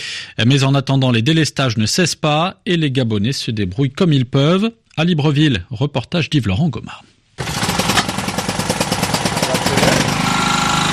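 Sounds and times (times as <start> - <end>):
speech: 0.4 - 7.5
home power generator running during a power cut in Libreville, Gabon: 7.4 - 10.9.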